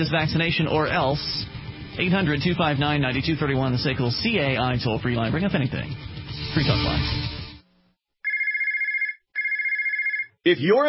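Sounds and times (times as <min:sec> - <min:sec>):
speech: 0:00.0 - 0:07.4, 0:10.4 - 0:10.8
electronic telephone ringtone trilling: 0:08.2 - 0:10.4.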